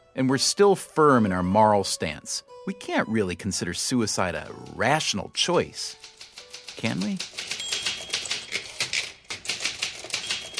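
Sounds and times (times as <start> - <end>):
speech: 0.2 - 6.1, 6.8 - 7.5
fast typing on a typewriter: 4.4 - 10.5.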